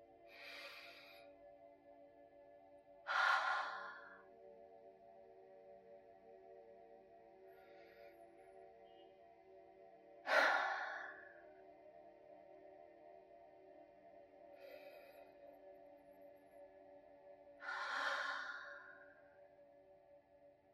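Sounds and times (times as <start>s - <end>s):
faint sustained tones: 0.0s - 20.7s
slow deep breaths during a guided relaxation: 0.2s - 2.0s, 2.9s - 4.8s, 7.2s - 9.0s, 10.0s - 12.5s, 13.8s - 19.9s.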